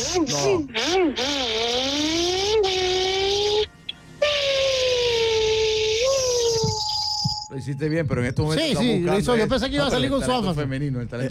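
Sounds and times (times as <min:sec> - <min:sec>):
voice imitating a Formula 1 car engine: 0:00.0 - 0:06.5
speech: 0:00.1 - 0:01.8, 0:07.5 - 0:11.2.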